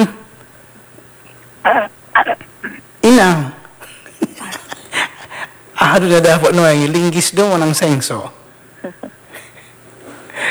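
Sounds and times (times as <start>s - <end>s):
speech: 0.0s - 0.2s, 6.0s - 8.4s
faint hum: 0.0s - 10.4s
harsh coughs: 1.6s - 3.7s
laughter: 3.2s - 6.6s, 8.8s - 10.4s.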